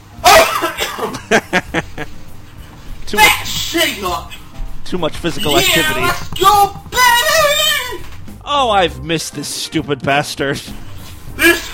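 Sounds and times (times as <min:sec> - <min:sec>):
man coughing: 0:00.2 - 0:01.4
laughter: 0:00.4 - 0:02.1
speech: 0:01.3 - 0:01.6, 0:03.1 - 0:07.1, 0:08.5 - 0:10.8.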